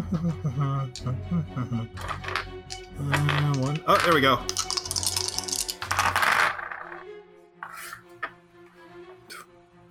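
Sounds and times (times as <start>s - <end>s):
speech: 0.1s - 4.8s
dice being rolled: 2.0s - 7.0s.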